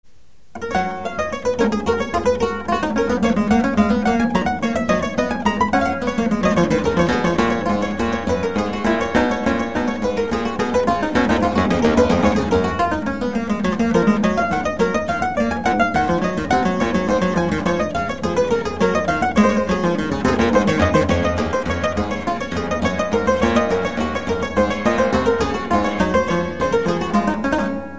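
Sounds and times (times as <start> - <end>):
clavichord: 0.6 - 27.9.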